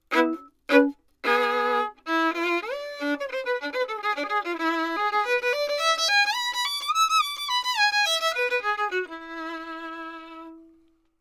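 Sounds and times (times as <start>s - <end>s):
violin: 0.0s - 11.1s.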